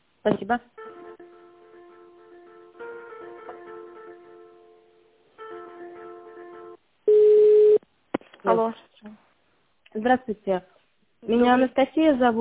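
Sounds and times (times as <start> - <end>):
speech: 0.2 - 0.8, 8.6 - 8.9, 10.0 - 12.3
soft electronic telephone hold melody during office call transfer: 0.8 - 7.3
loud steady single-pitched telephone beep: 7.1 - 7.8.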